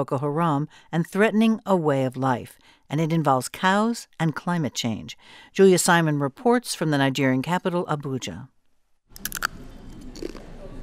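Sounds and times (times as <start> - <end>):
speech: 0.0 - 8.6, 9.2 - 9.5
crunchy bites of plantain chips in a city mall: 9.2 - 10.4.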